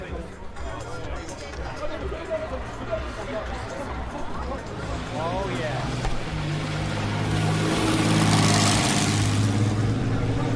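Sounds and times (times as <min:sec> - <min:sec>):
murmuring crowd of spectators: 0:00.0 - 0:10.5
vintage six-cylinder Sunbeam Indianapolis racing car engine revving up a hill: 0:04.7 - 0:10.5.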